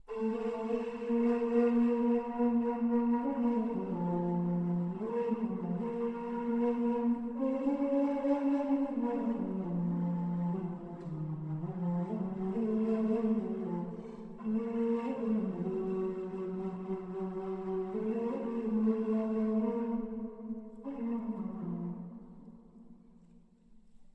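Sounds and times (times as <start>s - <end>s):
ney flute playing: 0.0s - 22.7s.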